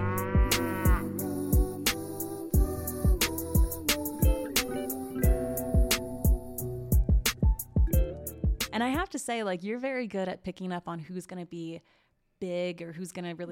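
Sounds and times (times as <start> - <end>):
hip-hop beat from a rap song with kick drums, snare and synth: 0.0 - 9.2
speech: 8.8 - 13.5.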